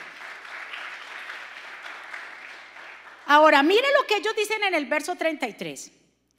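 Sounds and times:
audience applauding loudly: 0.0 - 3.3
speech: 3.3 - 6.0.

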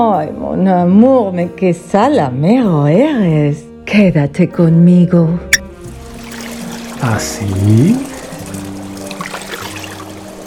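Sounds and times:
speech: 0.0 - 5.6, 7.0 - 8.1
water pouring into a bathtub for a bath: 5.8 - 10.4.

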